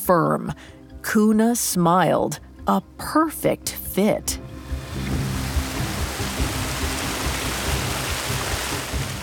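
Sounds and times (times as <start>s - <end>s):
speech: 0.1s - 4.5s
rushing river water: 4.6s - 9.2s
heavy rain: 4.7s - 9.2s.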